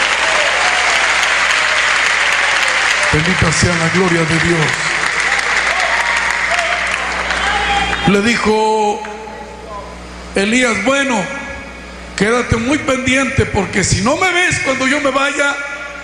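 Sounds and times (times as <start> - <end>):
audience applauding: 0.0 - 8.3
speech: 3.1 - 5.0, 8.1 - 9.2, 10.3 - 11.4, 12.2 - 15.7.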